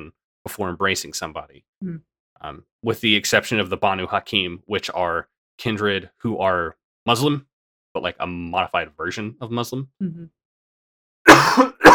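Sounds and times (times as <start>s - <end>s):
speech: 0.0s - 10.4s, 11.2s - 11.8s
person coughing: 11.3s - 11.9s.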